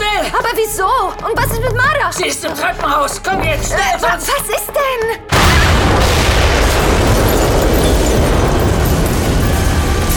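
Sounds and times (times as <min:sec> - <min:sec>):
speech: 0:00.6 - 0:05.3
apartment explosion blowing out a kitchen window: 0:05.3 - 0:10.1.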